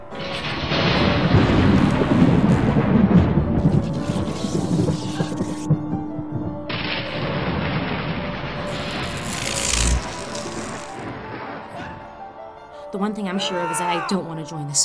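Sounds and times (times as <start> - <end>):
deep rolling thunder: 0.0 - 12.3
steady hiss of rain: 0.2 - 5.6, 6.7 - 11.6
speech: 13.0 - 14.8.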